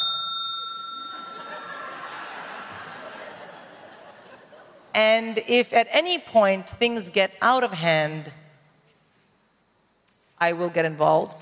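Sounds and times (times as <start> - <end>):
bell ringing: 0.0 - 3.2
laughter: 1.1 - 4.9
speech: 5.0 - 8.4, 10.4 - 11.4.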